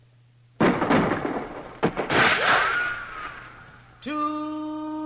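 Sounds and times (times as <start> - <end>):
gunshot sound effect in a song: 0.6 - 3.8
speech: 4.0 - 4.4.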